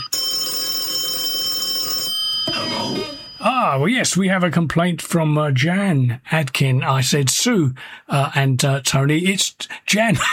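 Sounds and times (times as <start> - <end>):
telephone ringing with a metallic bell trill: 0.0 - 3.8
speech: 3.4 - 10.3.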